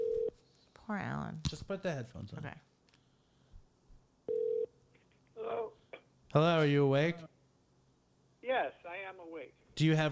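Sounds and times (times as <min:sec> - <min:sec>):
phone call ringing tone: 0:00.0 - 0:00.3, 0:04.3 - 0:04.7
speech: 0:00.9 - 0:02.7, 0:06.3 - 0:07.3, 0:08.6 - 0:10.1.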